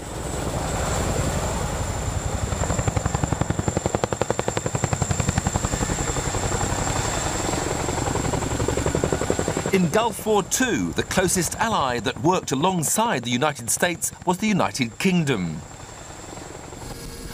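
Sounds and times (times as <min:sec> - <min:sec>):
helicopter rotor and engine noise: 0:00.0 - 0:17.3
speech: 0:09.8 - 0:15.7
thin high whine: 0:16.7 - 0:17.3.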